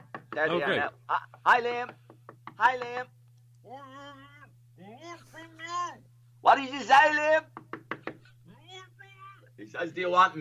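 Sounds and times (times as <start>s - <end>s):
visitors knocking on a window: 0.0s - 0.5s, 1.6s - 3.0s, 7.5s - 8.2s
steady low hum: 0.0s - 10.3s
speech: 0.4s - 4.3s, 5.1s - 7.6s, 9.6s - 10.3s.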